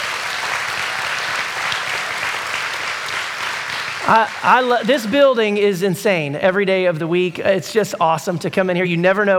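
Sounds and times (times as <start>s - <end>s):
large audience applauding: 0.0s - 5.8s
speech: 4.1s - 9.3s.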